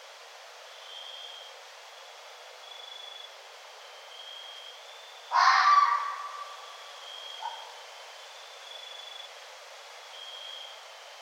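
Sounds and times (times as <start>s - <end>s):
red fox harsh grating call: 5.3s - 6.7s.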